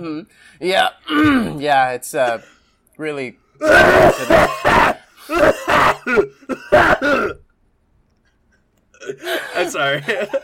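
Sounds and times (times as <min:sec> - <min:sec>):
speech: 0:00.0 - 0:07.4, 0:09.0 - 0:10.4
person coughing in hard, rasping fits: 0:03.6 - 0:07.5.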